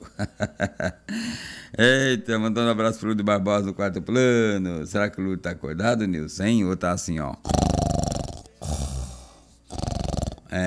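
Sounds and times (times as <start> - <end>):
speech: 0.2 - 7.6
person imitating snoring: 7.4 - 10.6.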